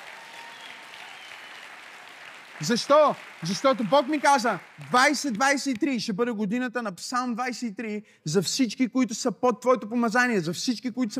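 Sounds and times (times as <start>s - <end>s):
audience clapping and applauding: 0.0s - 6.1s
speech: 2.6s - 11.1s.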